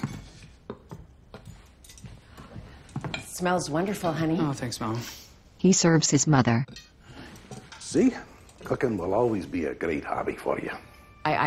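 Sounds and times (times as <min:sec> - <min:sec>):
soft clinks and taps of tableware: 0:00.0 - 0:04.4, 0:06.7 - 0:11.2
speech: 0:03.4 - 0:06.9, 0:07.9 - 0:11.4.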